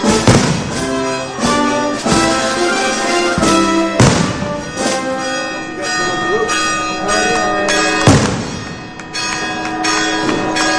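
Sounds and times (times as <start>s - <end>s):
fireworks bursting: 0.0s - 5.2s, 8.0s - 9.0s
church bells clanging during a festival: 0.0s - 10.7s
faint crowd murmur: 0.0s - 10.7s.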